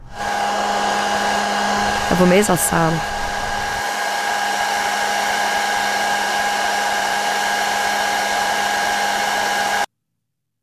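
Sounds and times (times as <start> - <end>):
hair dryer running: 0.0 - 9.9
speech: 2.1 - 3.1.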